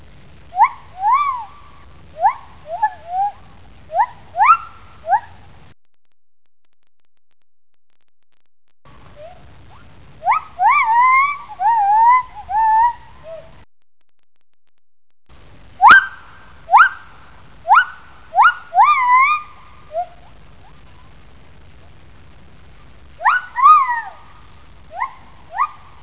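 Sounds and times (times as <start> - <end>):
male gibbons calling: 0.5 - 5.4, 9.2 - 13.5, 15.8 - 21.1, 23.2 - 26.0.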